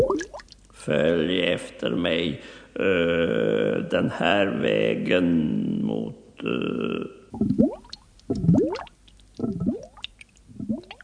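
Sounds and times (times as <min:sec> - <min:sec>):
air bubbles rising from a bream swimming underwater: 0:00.0 - 0:00.5, 0:07.4 - 0:11.0
speech: 0:00.8 - 0:07.6.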